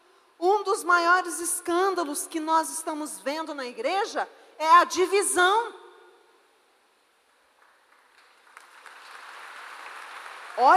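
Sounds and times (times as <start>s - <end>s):
speech: 0.8s - 5.8s, 10.6s - 10.7s
crowd of people applauding: 7.6s - 10.7s.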